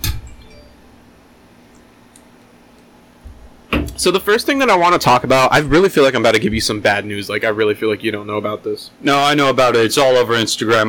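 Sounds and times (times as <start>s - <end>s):
drinks glasses clinking together in a toast: 0.0s - 0.8s
speech: 4.0s - 10.8s.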